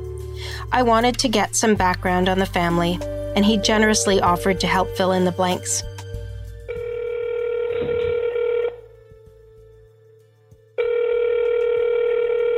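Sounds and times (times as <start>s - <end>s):
speech: 0.6s - 5.9s
telephone ringback tone on an outgoing call through the handset: 6.7s - 8.8s, 10.8s - 12.5s.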